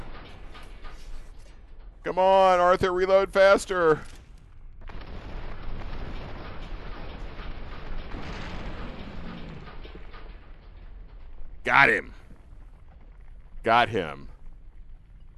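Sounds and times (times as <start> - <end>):
steady rumbling video game noise: 0.0 - 15.3
speech: 2.0 - 4.2, 11.7 - 12.2, 13.6 - 14.3
high explosive rockets exploding in a video game: 4.9 - 10.0.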